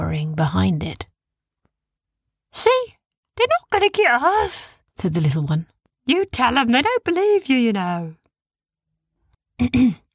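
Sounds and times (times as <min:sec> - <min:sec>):
speech: 0:00.1 - 0:01.1, 0:02.5 - 0:08.2, 0:09.6 - 0:10.0
throat clearing: 0:09.6 - 0:10.1.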